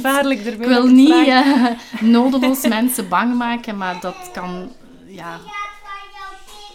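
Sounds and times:
speech: 0.0 - 5.6
young children chattering and calling while playing: 0.0 - 6.7
laughter: 0.9 - 3.2.

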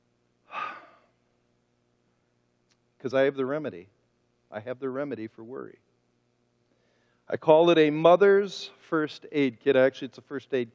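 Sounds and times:
deep breath: 0.5 - 1.1, 6.7 - 7.3
speech: 3.0 - 5.9, 7.3 - 10.7.

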